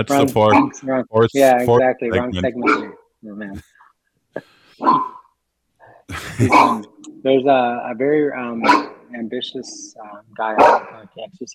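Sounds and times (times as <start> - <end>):
speech: 0.0 - 3.8, 4.4 - 5.2, 6.1 - 11.5
dog barking: 0.5 - 0.8, 2.6 - 3.0, 4.8 - 5.3, 6.4 - 6.8, 8.6 - 9.0, 10.6 - 11.0
laughter: 1.2 - 2.5, 6.1 - 6.8.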